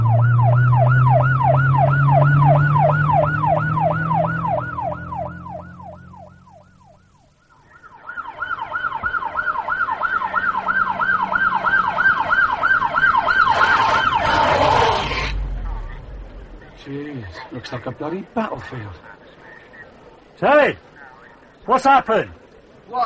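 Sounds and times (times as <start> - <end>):
emergency vehicle siren yelping while driving: 0.0 - 15.4
low engine rumble: 0.0 - 21.6
speech: 17.7 - 19.1, 20.4 - 20.9, 21.7 - 23.0.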